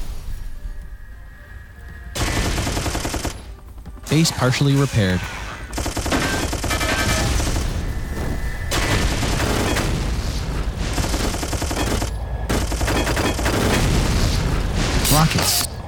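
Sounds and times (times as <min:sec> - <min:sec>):
machine gun firing in a video game: 0:02.2 - 0:03.6, 0:05.5 - 0:07.9, 0:08.7 - 0:10.2, 0:10.8 - 0:15.7
speech: 0:04.1 - 0:05.4.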